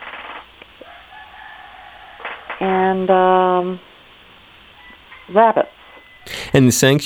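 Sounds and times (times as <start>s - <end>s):
steady hiss of outdoor noise: 0.0s - 7.0s
rooster crowing: 0.8s - 2.9s, 4.8s - 6.4s
speech: 2.6s - 3.9s, 5.3s - 5.8s, 6.5s - 7.0s.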